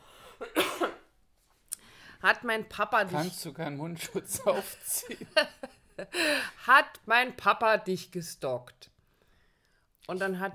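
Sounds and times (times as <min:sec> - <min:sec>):
person coughing harshly: 0:00.4 - 0:01.1
speech: 0:02.2 - 0:08.8, 0:10.1 - 0:10.5
laughter: 0:04.0 - 0:06.2.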